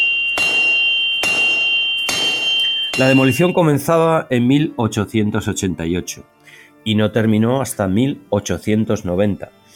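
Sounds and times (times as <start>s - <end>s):
hammer striking metal: 0.0s - 3.8s
speech: 3.0s - 9.6s.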